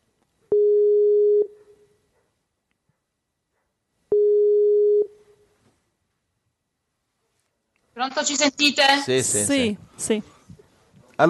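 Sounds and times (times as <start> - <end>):
steady single-pitched telephone beeps while calling back: 0.5 - 1.5, 4.1 - 5.1
speech: 8.1 - 10.3.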